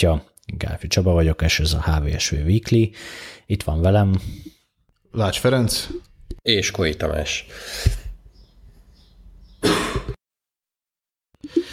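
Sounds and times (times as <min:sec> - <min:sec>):
speech: 0:00.0 - 0:08.0
harsh raspy coughs: 0:09.6 - 0:10.2.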